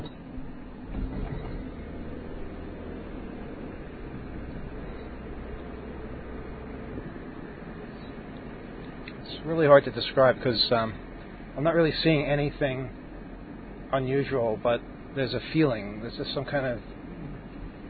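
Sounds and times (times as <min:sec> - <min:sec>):
vehicle rolling over railroad tracks in a town: 0:00.0 - 0:08.0
speech: 0:09.4 - 0:13.0, 0:13.9 - 0:16.9.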